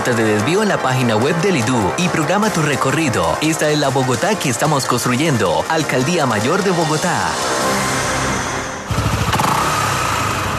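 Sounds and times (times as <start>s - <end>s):
speech: 0.0s - 7.9s
motorcycle engine revving with a throaty pulsing rumble: 7.4s - 10.5s.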